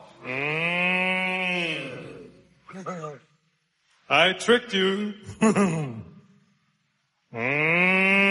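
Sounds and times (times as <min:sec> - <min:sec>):
person imitating a cow mooing: 0:00.0 - 0:02.4, 0:07.3 - 0:08.2
speech: 0:04.1 - 0:06.1.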